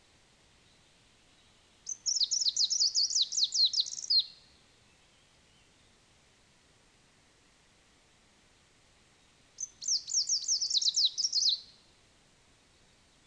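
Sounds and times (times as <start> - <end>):
Greenish warbler subspecies viridanus singing: 1.4 - 5.7, 9.6 - 11.8.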